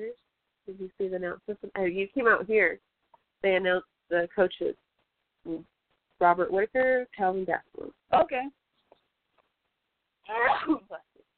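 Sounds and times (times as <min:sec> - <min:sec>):
speech: 0:00.8 - 0:04.8, 0:05.4 - 0:08.6, 0:10.3 - 0:11.1
person sneezing: 0:10.3 - 0:10.9.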